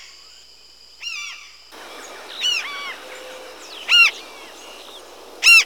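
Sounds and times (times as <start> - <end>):
Large-billed tern: 1.1 - 5.6.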